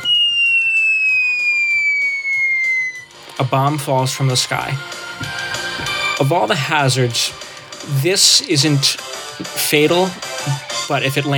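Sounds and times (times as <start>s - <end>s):
falling bomb whistle in a video game: 0.0s - 3.2s
speech: 3.4s - 5.4s, 6.2s - 11.3s.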